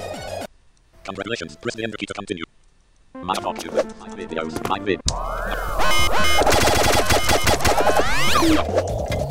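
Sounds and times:
speech: 0:01.1 - 0:07.0, 0:07.8 - 0:09.0
chiptune video game boss battle music with arpeggiated bleeps: 0:03.2 - 0:08.7.

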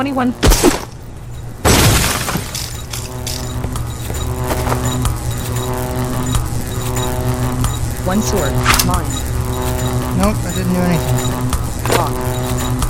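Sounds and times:
speech: 0:00.0 - 0:00.8, 0:08.1 - 0:09.3, 0:10.2 - 0:12.3
steady droning tonal background: 0:00.0 - 0:12.8
glass breaking from a 21-foot drop onto glass: 0:01.6 - 0:03.0
scattered tinkling glass fragments: 0:01.7 - 0:03.0.

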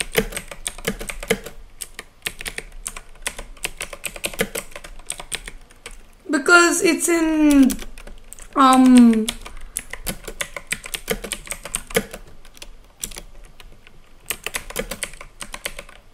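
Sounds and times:
typing on a glitchy computer keyboard: 0:00.0 - 0:06.0, 0:07.5 - 0:16.0
speech: 0:06.7 - 0:07.8, 0:08.6 - 0:09.4
short voiced hum: 0:08.5 - 0:09.7.

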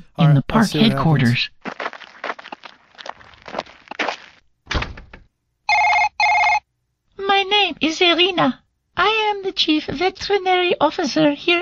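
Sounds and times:
speech: 0:00.2 - 0:01.8, 0:07.8 - 0:11.6
telephone ringing in a video game: 0:05.7 - 0:06.7.

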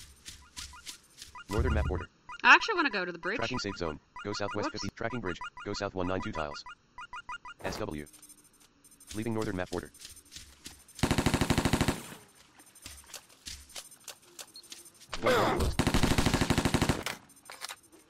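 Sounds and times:
speech: 0:01.5 - 0:08.2, 0:09.1 - 0:10.2, 0:15.2 - 0:15.8
MP5 burst fire in a video game: 0:11.0 - 0:12.2, 0:15.6 - 0:17.1.

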